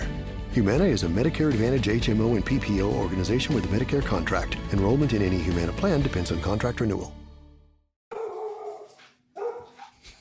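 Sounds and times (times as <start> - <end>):
speech: 0.6 - 7.2
dog barking: 8.1 - 10.1.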